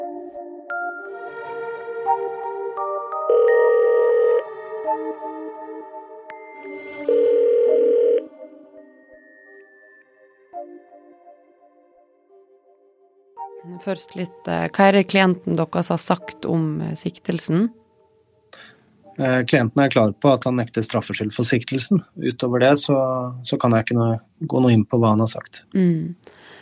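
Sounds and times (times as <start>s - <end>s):
soft tonal music: 0.0s - 23.9s
ringback tones of an outgoing phone call to a defence lawyer: 3.3s - 4.5s, 7.0s - 8.3s
speech: 13.8s - 17.8s, 18.6s - 26.5s.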